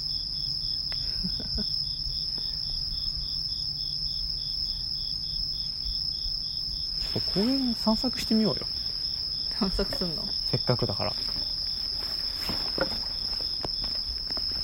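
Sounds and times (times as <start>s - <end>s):
cicada buzzing: 1.8s - 14.6s
speech: 7.1s - 8.8s, 9.6s - 11.6s
soft knocks: 12.4s - 13.3s.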